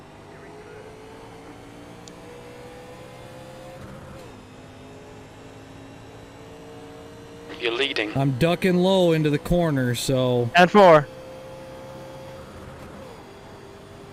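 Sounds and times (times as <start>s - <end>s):
race cars accelerating at a green-flag start: 0.0s - 14.1s
speech: 7.6s - 11.2s.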